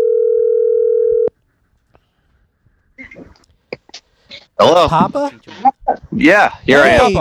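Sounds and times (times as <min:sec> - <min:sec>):
telephone dial tone of an outgoing call: 0:00.0 - 0:01.3
speech: 0:04.6 - 0:07.2.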